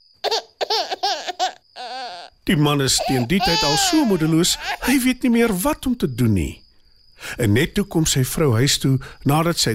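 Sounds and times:
baby crying and wailing: 0:00.2 - 0:05.2
speech: 0:02.5 - 0:06.6, 0:07.2 - 0:09.7.

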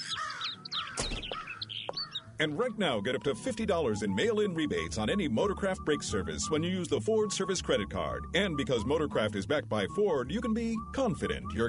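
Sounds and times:
faint outdoor background: 0:00.0 - 0:11.6
crow cawing: 0:00.1 - 0:02.3
speech: 0:02.4 - 0:11.6.

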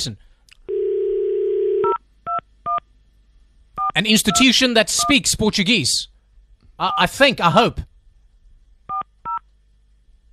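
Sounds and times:
speech: 0:00.0 - 0:00.3, 0:04.0 - 0:06.1, 0:06.8 - 0:07.9
telephone dial tone: 0:00.7 - 0:02.0.

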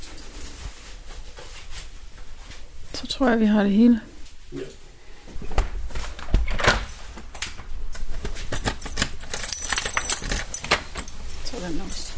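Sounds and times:
speech: 0:03.0 - 0:04.8
keys jangling as house key is taken: 0:08.7 - 0:12.1.

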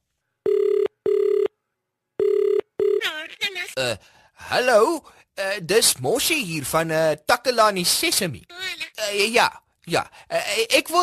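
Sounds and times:
telephone ringback tone heard through the line: 0:00.4 - 0:01.5, 0:02.2 - 0:03.0
speech: 0:03.6 - 0:11.0.

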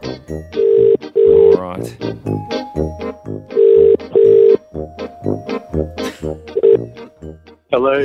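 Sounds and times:
speech: 0:00.2 - 0:00.6
outgoing call ringback tone over a phone line: 0:00.6 - 0:01.6, 0:03.5 - 0:04.6, 0:06.5 - 0:07.0.

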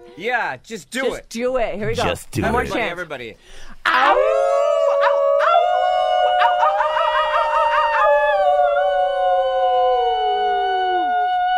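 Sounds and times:
speech: 0:00.2 - 0:04.4
people howling like dogs: 0:03.9 - 0:11.5.

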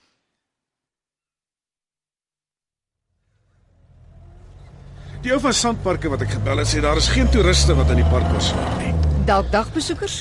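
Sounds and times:
car pulling away with engine and road noise: 0:03.2 - 0:10.1
speech: 0:05.2 - 0:10.1.

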